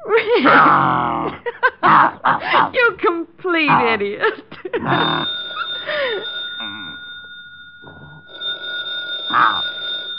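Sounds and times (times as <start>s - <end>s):
laughter: 0.0s - 2.8s, 4.2s - 6.3s
speech: 0.4s - 5.2s
telephone bell ringing: 4.8s - 10.1s.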